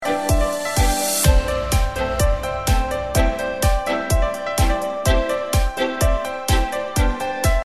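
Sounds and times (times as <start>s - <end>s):
background music: 0.0s - 7.6s.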